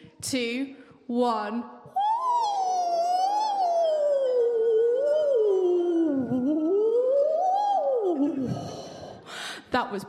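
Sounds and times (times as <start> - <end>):
speech: 0.2 - 1.8, 9.7 - 10.0
group of people imitating whale calls: 1.9 - 9.2.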